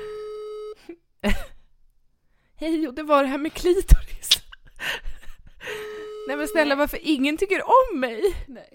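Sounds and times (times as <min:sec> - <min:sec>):
electronic telephone ringing tone: 0:00.0 - 0:00.8, 0:05.7 - 0:06.9
speech: 0:00.8 - 0:01.5, 0:02.6 - 0:04.1, 0:06.3 - 0:08.7.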